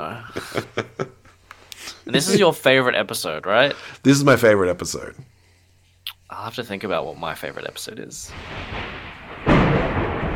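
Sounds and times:
speech: 0.0s - 1.0s, 2.1s - 5.3s, 6.3s - 9.0s
laughter: 0.2s - 1.4s, 2.1s - 2.6s
deep thunder boom and rumbling: 8.3s - 10.3s.

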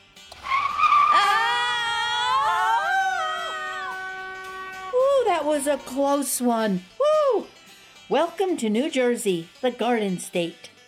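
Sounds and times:
car skidding with tires squealing while swerving through heavy traffic in New Jersey: 0.3s - 5.6s
speech: 5.5s - 6.9s, 8.1s - 10.8s.

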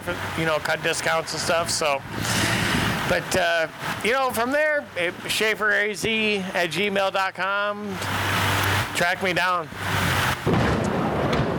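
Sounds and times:
speech: 0.1s - 8.3s, 9.0s - 10.6s
rolling thunder: 10.4s - 11.5s.

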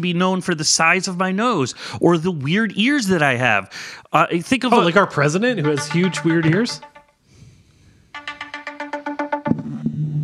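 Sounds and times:
speech: 0.0s - 6.9s
phone ringtone of bright electronic pulses: 5.6s - 7.1s, 8.2s - 9.6s.

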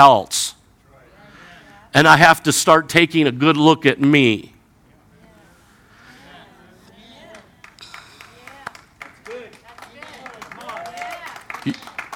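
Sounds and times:
speech: 0.0s - 0.6s, 2.0s - 4.5s, 11.6s - 11.9s
low murmur of voices: 0.8s - 3.3s, 4.3s - 12.0s
scattered clapping from a church audience: 7.2s - 12.1s.

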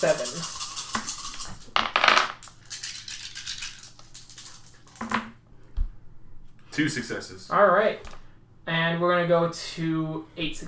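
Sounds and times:
speech: 0.0s - 0.6s, 6.8s - 10.6s
dice clattering across a hard table during a tabletop game roll: 0.0s - 5.3s.

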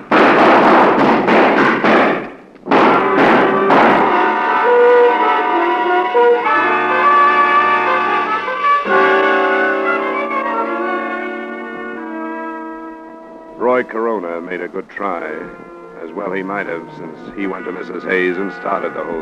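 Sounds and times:
gunshots in a radio crime drama: 0.0s - 4.6s
sustained music cue: 2.7s - 19.2s
speech: 14.7s - 19.2s.

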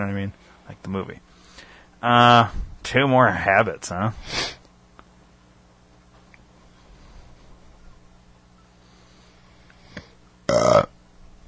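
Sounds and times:
speech: 0.0s - 1.4s, 2.0s - 4.5s
loud burp into a microphone: 9.9s - 11.0s.

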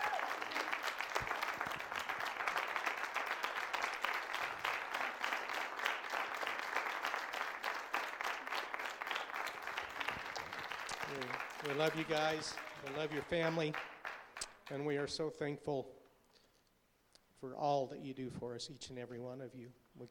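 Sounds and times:
large audience applauding: 0.0s - 15.0s
speech: 11.7s - 13.9s, 14.7s - 16.0s, 17.4s - 20.0s.

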